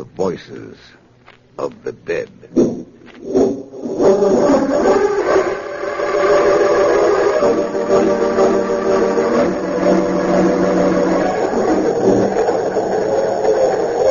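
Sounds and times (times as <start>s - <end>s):
speech: 0.0s - 1.0s, 1.6s - 5.2s
express train speeding at night: 2.2s - 14.1s
express train whistle wailing: 4.8s - 14.1s.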